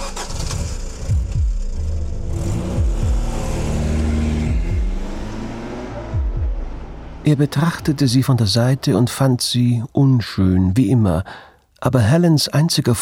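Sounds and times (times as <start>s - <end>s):
car engine starting and revving: 0.0s - 9.6s
speech: 7.3s - 13.0s.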